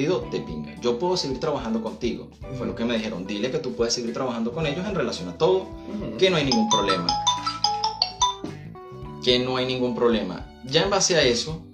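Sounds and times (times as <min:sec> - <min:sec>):
speech: 0:00.0 - 0:07.6, 0:09.2 - 0:11.7
mobile phone ringtone of bright electronic chime notes: 0:06.5 - 0:08.6.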